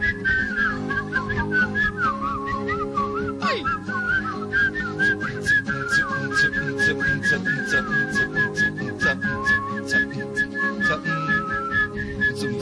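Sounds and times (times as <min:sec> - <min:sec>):
group whistling a melody: 0:00.0 - 0:12.6
instrumental backing: 0:00.0 - 0:12.6.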